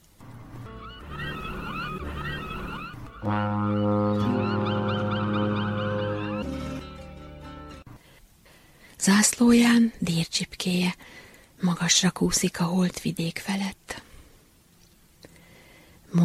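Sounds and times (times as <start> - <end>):
deep ship's horn blast: 0.6 - 6.4
chattering bird-like calls: 0.7 - 6.5
speech: 3.2 - 4.4, 9.0 - 14.0.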